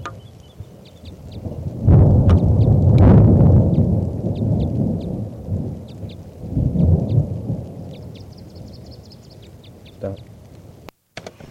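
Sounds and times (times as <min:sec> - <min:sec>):
faint high bird calls chirping: 0:00.0 - 0:02.8, 0:03.6 - 0:05.2, 0:05.8 - 0:10.4
deep thunder rumbling during a storm: 0:00.0 - 0:10.9
steady hiss of rain: 0:00.0 - 0:11.4.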